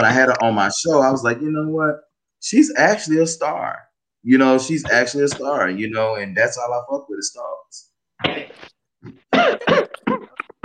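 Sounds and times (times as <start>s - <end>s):
speech: 0.0s - 10.4s
person coughing: 8.2s - 10.6s
throat clearing: 8.2s - 10.6s.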